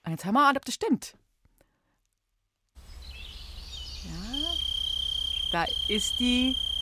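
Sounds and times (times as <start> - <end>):
speech: 0.1 - 1.2, 5.5 - 6.7
cricket chirping: 2.8 - 6.7.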